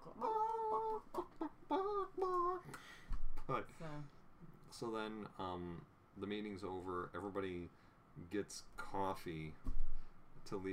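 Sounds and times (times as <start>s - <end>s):
person imitating a clucking chicken: 0.0s - 2.8s
speech: 3.5s - 9.7s, 10.5s - 10.7s.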